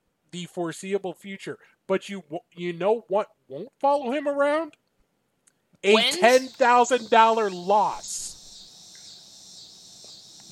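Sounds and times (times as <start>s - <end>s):
speech: 0.3s - 4.8s, 5.8s - 8.4s
laughter: 5.9s - 6.9s
cicadas buzzing: 5.9s - 10.5s.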